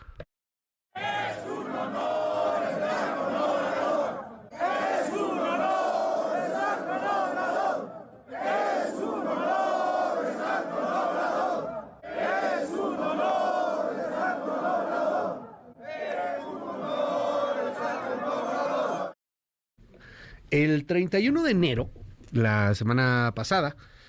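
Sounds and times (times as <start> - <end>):
crowd of Electricians' Union protesters chanting outside a courthouse: 0.9 - 19.2
speech: 20.6 - 24.0.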